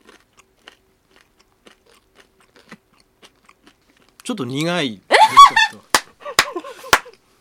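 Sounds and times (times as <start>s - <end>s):
biting and chewing a burnt blackened homemade pancake: 0.0s - 4.7s
speech: 4.3s - 5.8s
laughter: 5.1s - 7.2s.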